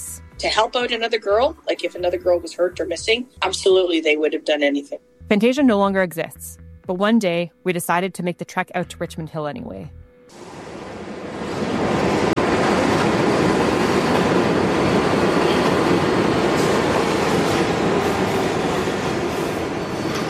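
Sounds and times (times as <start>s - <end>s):
speech: 0.4s - 10.5s
subway train rumbling along the tracks to Richmond Hill: 10.3s - 20.2s.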